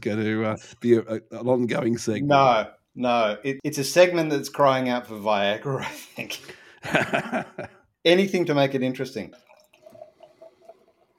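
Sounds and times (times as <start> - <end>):
speech: 0.0 - 9.5
laughter: 6.0 - 7.8
beer pouring into a glass: 9.1 - 11.1.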